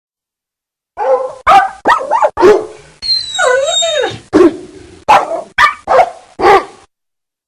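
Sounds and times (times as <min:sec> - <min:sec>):
three dogs barking to each other: 0:01.0 - 0:02.8, 0:04.1 - 0:06.8
dog giving a long wavering whine: 0:03.0 - 0:04.6.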